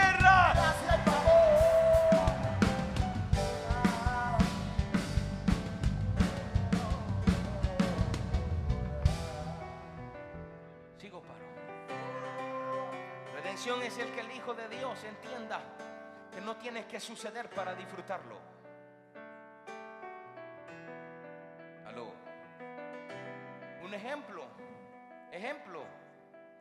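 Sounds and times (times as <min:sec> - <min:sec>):
audience shouting and whooping: 0:00.0 - 0:04.6
musical backing with sustained instrumental tones: 0:00.0 - 0:26.6
speech: 0:13.7 - 0:15.8, 0:16.4 - 0:18.6, 0:23.9 - 0:24.7, 0:25.3 - 0:26.0.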